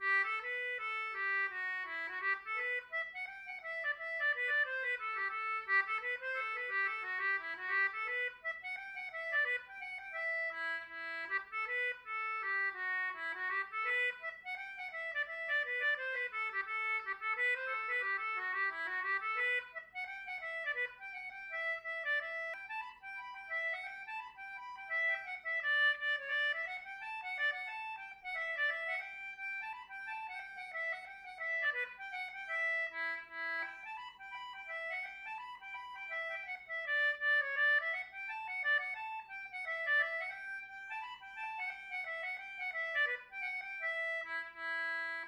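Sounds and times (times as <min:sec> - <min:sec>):
Celtic button box playing hornpipes: 0:00.0 - 0:45.2.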